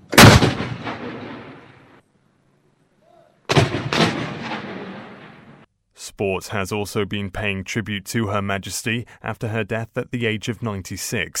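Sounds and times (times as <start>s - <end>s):
military artillery gun salute blasts in Wellington: 0.0s - 2.0s, 3.5s - 5.7s
speech: 6.2s - 11.3s.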